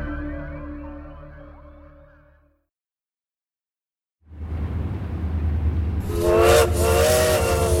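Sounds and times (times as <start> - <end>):
hissing rumble of steam: 4.6 - 7.7
steam train whistle: 6.0 - 7.7.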